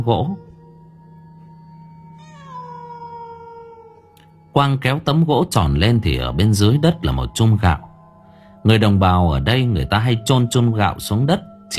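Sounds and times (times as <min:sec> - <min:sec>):
speech: 0:00.0 - 0:00.5, 0:04.6 - 0:07.9, 0:08.6 - 0:11.7
cat meowing inside a house: 0:02.2 - 0:04.2.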